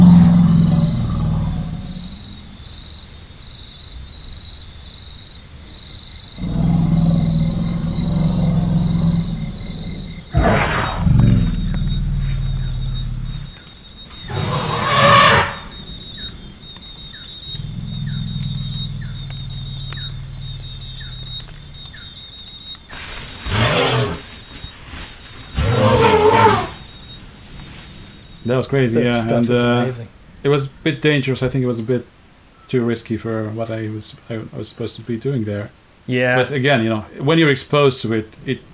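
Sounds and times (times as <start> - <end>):
elephants trumpeting: 0.0 - 2.5, 6.4 - 16.7, 22.9 - 29.4
deep rolls of thunder: 0.0 - 3.0, 6.1 - 31.5
faint insect-like chatter: 0.0 - 38.7
speech: 28.5 - 38.7.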